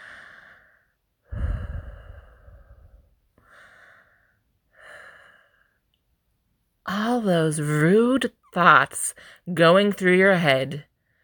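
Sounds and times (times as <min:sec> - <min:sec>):
breathing close to the microphone: 0:00.0 - 0:05.9, 0:09.2 - 0:09.5, 0:11.0 - 0:11.2
speech: 0:07.2 - 0:10.9.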